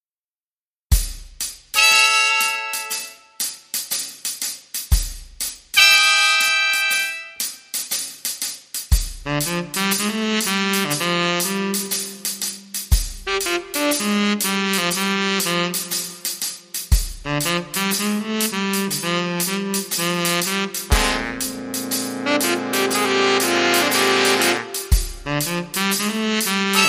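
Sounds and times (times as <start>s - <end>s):
drums: 0.9s - 26.8s
horns: 1.8s - 3.5s, 5.8s - 7.7s, 9.2s - 26.8s.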